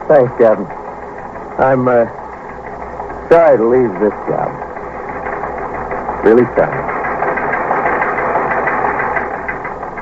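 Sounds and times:
speech: 0.1 - 0.8, 1.6 - 2.2, 3.3 - 4.7, 6.2 - 6.9
teletype machine printing: 0.7 - 10.0.

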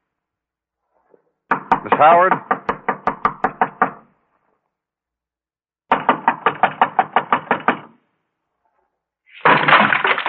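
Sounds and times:
police knocking on a door: 1.5 - 4.0, 5.9 - 7.9
speech: 2.0 - 2.6.

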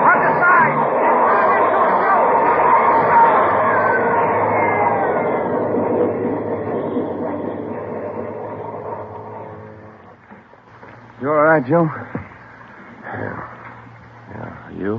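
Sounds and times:
metallic squealing of a train: 0.0 - 10.8
train rushing through a tunnel: 0.0 - 14.9
speech: 11.6 - 12.1.

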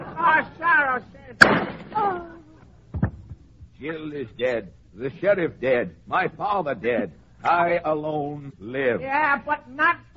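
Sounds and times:
speech: 0.2 - 2.3, 3.8 - 10.1
single gunshot from a gun: 1.4 - 2.1.

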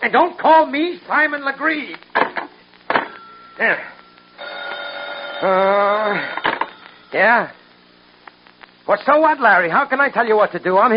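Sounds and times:
speech: 0.1 - 2.4, 3.6 - 4.6, 5.4 - 6.5, 7.1 - 7.6, 8.9 - 10.9
telephone ringing with a buzzing electronic tone: 3.0 - 7.7.

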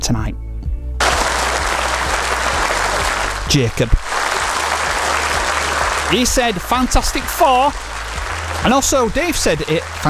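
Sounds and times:
applause for the winner of a party game: 1.0 - 10.0
speech: 3.5 - 4.2, 6.1 - 7.9, 8.6 - 10.0.

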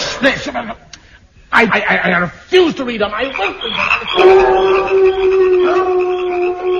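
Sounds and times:
speech: 0.2 - 0.9, 1.6 - 6.7
prairie dogs howling at night on the prairie: 4.1 - 6.7.

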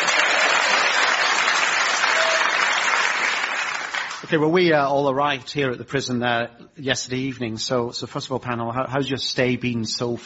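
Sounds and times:
large audience applauding at a prison: 0.0 - 4.3
speech: 4.3 - 10.2.

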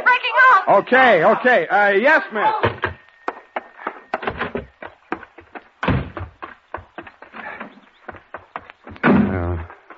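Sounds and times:
speech: 0.2 - 2.7
door banging shut with a heavy thud: 2.6 - 3.0, 4.2 - 4.7, 5.8 - 6.3
sharp knocks and clatters: 2.7 - 9.9.

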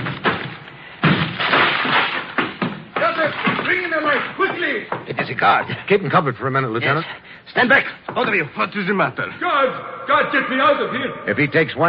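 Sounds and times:
door being broken down: 0.0 - 5.0
speech: 4.8 - 11.8.

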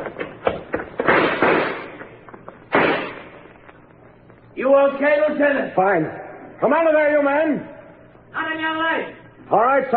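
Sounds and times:
gunshots fired as covering fire during a standoff: 1.0 - 2.0, 2.7 - 3.4
speech: 4.7 - 7.7, 8.4 - 9.9.

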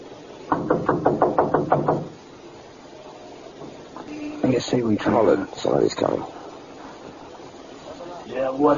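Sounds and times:
police officers knocking firmly on a door: 0.5 - 2.2
speech: 0.7 - 1.2, 4.6 - 6.4, 8.5 - 8.7.

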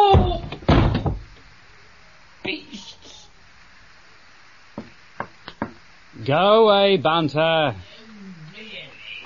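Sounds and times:
door slamming shut hard: 0.1 - 1.3
speech: 6.3 - 7.9.

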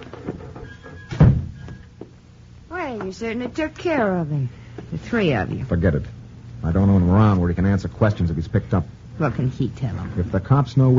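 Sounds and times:
quiet room noise: 0.0 - 10.9
door closing with a dull low thunk: 1.1 - 1.7
speech: 2.9 - 10.9.

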